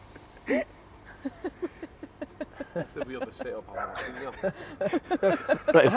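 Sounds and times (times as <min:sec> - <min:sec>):
speech: 0:00.5 - 0:02.0, 0:02.8 - 0:05.9
laughter: 0:00.5 - 0:05.9
dog barking and yipping excitedly: 0:03.7 - 0:04.2.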